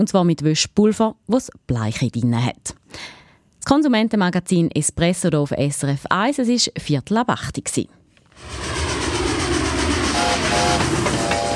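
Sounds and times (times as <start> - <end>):
speech: 0.0 - 8.8
train rumbling: 8.4 - 11.5
train wheels rattling: 8.4 - 11.5.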